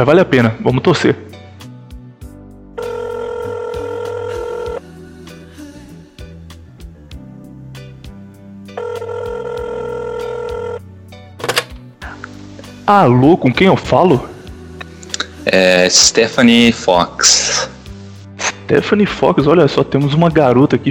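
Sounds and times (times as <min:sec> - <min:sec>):
speech: 0:00.0 - 0:01.4, 0:12.9 - 0:14.3, 0:15.5 - 0:17.7, 0:18.7 - 0:20.9
telephone ringback tones while an international call connects: 0:02.8 - 0:04.8, 0:08.8 - 0:10.8.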